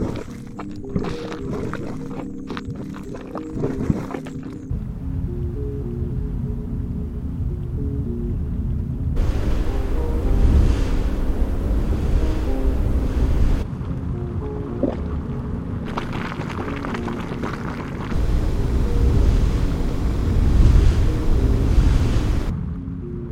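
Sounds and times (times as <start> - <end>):
geothermal ambience: 0.0 - 22.5.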